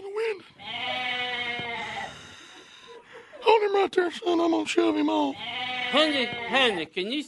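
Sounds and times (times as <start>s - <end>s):
goat bleating: 0.5s - 2.2s, 5.1s - 6.9s
speech: 3.6s - 7.2s.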